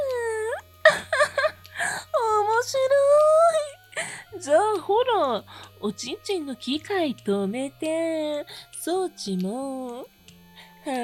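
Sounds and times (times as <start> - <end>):
high wailing cry: 0.0 - 5.4
speech: 4.8 - 10.2, 10.8 - 11.0.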